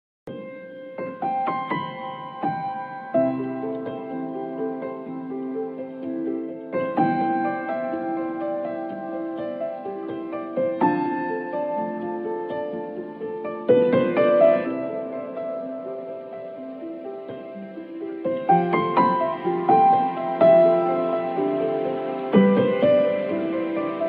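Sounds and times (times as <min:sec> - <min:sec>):
piano ringtone: 0:00.3 - 0:24.0.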